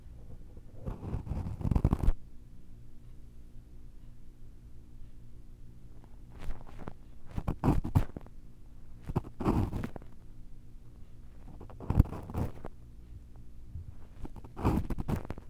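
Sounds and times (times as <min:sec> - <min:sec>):
low steady hum: 0:00.0 - 0:15.4
scraping and rubbing from ear cleaning with tools: 0:00.2 - 0:02.2, 0:06.0 - 0:08.3, 0:09.0 - 0:10.1, 0:11.4 - 0:12.7, 0:13.8 - 0:15.4.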